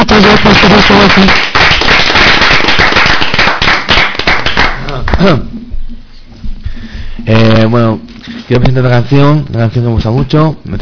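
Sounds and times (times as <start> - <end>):
audience applause: 0.0 - 5.1
speech: 0.2 - 1.5, 5.2 - 5.5, 7.2 - 10.7.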